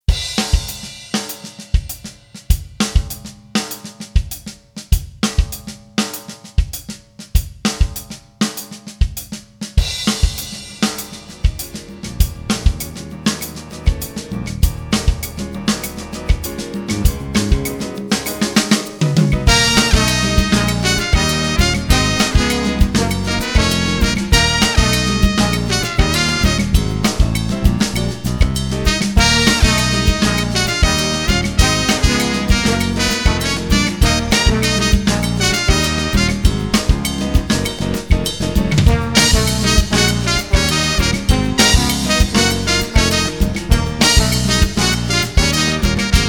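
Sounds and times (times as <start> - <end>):
afro-cuban music: 0.0 - 46.2.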